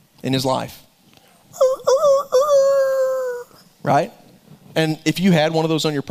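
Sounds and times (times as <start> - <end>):
speech: 0.2 - 0.9, 3.8 - 4.2, 4.8 - 6.0
person imitating a rooster crowing: 1.6 - 3.6.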